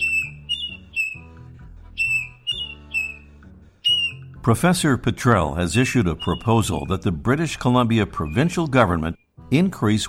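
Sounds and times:
marbled murrelet calling, a forest-nesting seabird: 0.0 - 4.4, 5.8 - 7.2, 8.0 - 9.3
speech: 4.4 - 10.0.

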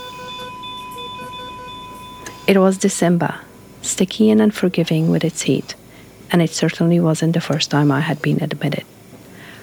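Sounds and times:
electronic hospital alarm beeping: 0.0 - 5.8
low hum: 0.0 - 9.6
speech: 2.5 - 9.0.

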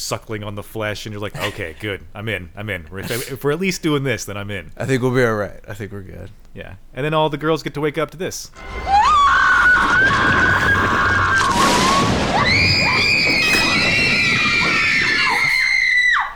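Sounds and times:
speech: 0.0 - 9.2, 9.8 - 12.2
group of girls screaming in unison: 8.6 - 16.3.

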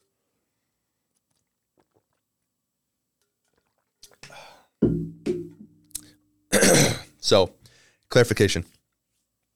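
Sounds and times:
person sipping a drink: 1.1 - 2.4, 3.4 - 4.7, 5.9 - 6.2
speech: 7.2 - 8.8.

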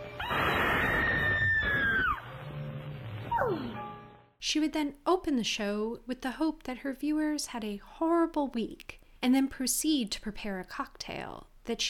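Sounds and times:
woman's piercing shrill scream: 0.2 - 2.2
woman's short downward-sliding shriek: 0.2 - 2.2
speech: 4.4 - 11.8.

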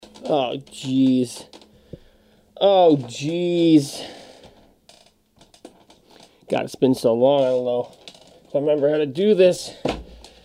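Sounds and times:
chair creaking: 0.0 - 1.9, 2.6 - 6.5, 7.2 - 9.1
speech: 0.2 - 1.6, 2.6 - 4.2, 6.5 - 9.9.

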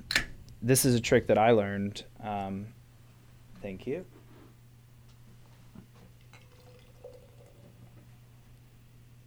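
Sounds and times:
speech: 0.6 - 2.8, 3.6 - 4.2
beer pouring into a glass: 5.9 - 8.2.

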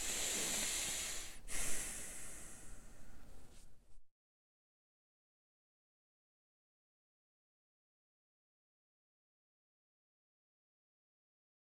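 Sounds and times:
deep breath in: 0.0 - 3.6.

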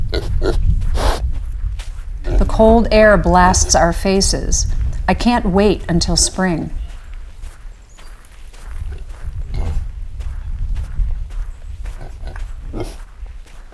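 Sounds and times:
pig grunting while walking through fresh snow: 0.0 - 1.2, 2.2 - 4.9, 9.5 - 9.8, 12.0 - 13.0
footsteps crunching through several inches of fresh snow: 0.2 - 13.7
speech: 2.6 - 6.8.

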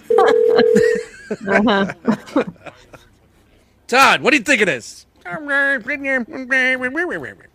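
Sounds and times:
steady electronic telephone tone: 0.0 - 1.0
people chuckling and talking: 0.3 - 3.5
speech: 0.7 - 2.9, 3.9 - 7.5
laughter: 0.7 - 3.2.

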